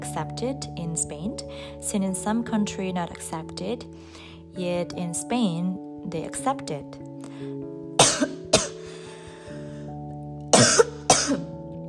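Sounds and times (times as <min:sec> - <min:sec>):
speech: 0:00.2 - 0:07.6
person coughing: 0:08.0 - 0:08.8, 0:10.5 - 0:11.5.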